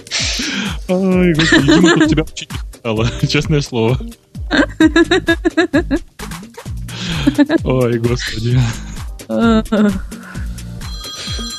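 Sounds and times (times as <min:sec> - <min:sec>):
laughter: 0:00.2 - 0:06.0, 0:07.0 - 0:10.0
speech: 0:00.4 - 0:06.1, 0:06.9 - 0:10.3
iPhone ringtone: 0:10.7 - 0:11.5.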